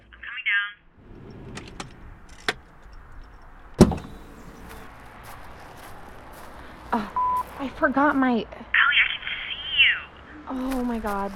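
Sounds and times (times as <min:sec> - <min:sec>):
car pulling in and idling: 0:00.9 - 0:11.3
car door shutting: 0:01.0 - 0:04.8
speech: 0:06.9 - 0:08.6, 0:10.6 - 0:11.3.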